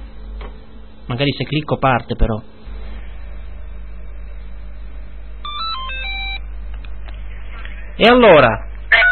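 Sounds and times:
steady low hum and telephone line noise: 0.0s - 9.0s
speech: 1.1s - 2.5s, 8.0s - 8.7s
telephone electronic ringtone melody of stepped tones: 5.4s - 6.4s.

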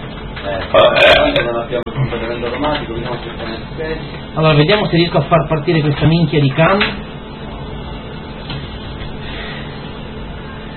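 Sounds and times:
speech: 0.4s - 7.1s
loud drawn-out burp: 0.7s - 1.5s
quiet throaty sounds: 0.7s - 1.5s.

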